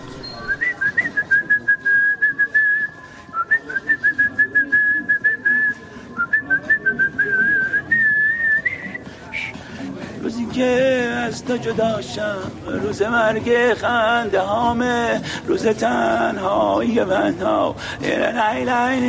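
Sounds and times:
person whistling a melodic tune while walking: 0.2 - 9.6
speech: 10.6 - 19.0.

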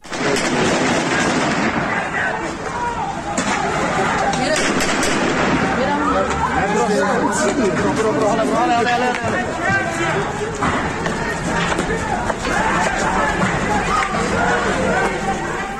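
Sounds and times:
gunfire during heavy street clashes at night protests in a border town: 0.0 - 2.6, 3.3 - 6.0
shouting crowd voices during night street protests: 0.0 - 15.7.

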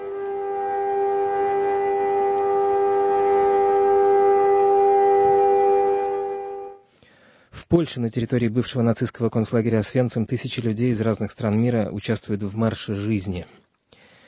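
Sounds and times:
memorial air-raid siren wailing across Israel on Holocaust Remembrance Day: 0.0 - 6.8
speech: 7.7 - 13.6.

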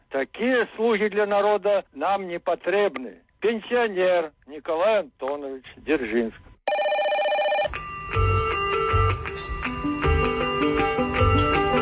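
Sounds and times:
speech: 0.1 - 6.5, 8.1 - 8.4
telephone bell trilling: 6.7 - 9.2
loud musical jingle with thumping bass beat and bright repeating tones: 7.8 - 11.8.

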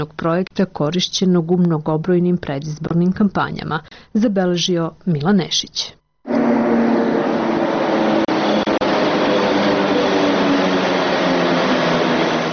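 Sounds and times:
speech: 0.0 - 6.0
suburban commuter train pulling in at a railway station platform in a cutting: 6.3 - 12.5.

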